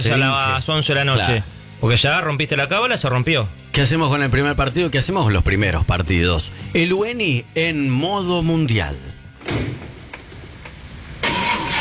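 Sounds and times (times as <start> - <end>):
speech: 0.0 - 9.8
car engine starting on a cool morning: 9.3 - 11.7.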